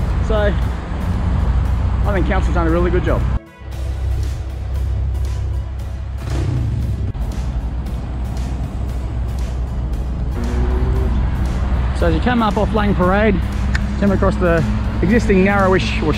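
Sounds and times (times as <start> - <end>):
cars and trucks swishing past: 0.0 - 16.1
heavy traffic on a five-lane road: 0.0 - 16.1
speech: 0.3 - 0.8, 2.0 - 3.4, 12.0 - 16.1.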